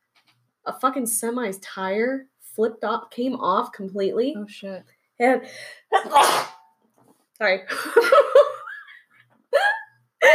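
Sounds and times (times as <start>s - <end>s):
speech: 0.7s - 6.5s, 7.4s - 8.5s
person sneezing: 5.9s - 6.7s.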